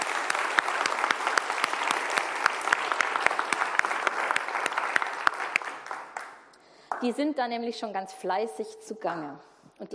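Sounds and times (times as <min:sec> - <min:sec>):
audience applauding with many hands clapping: 0:00.0 - 0:06.5
speech: 0:07.0 - 0:09.9.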